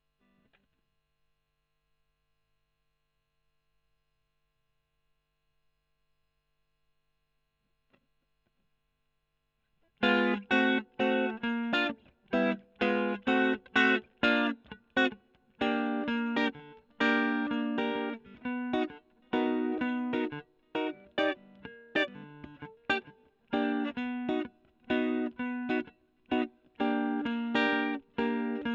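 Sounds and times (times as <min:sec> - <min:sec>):
electric guitar recorded with Gefell microphone: 0:09.9 - 0:28.7.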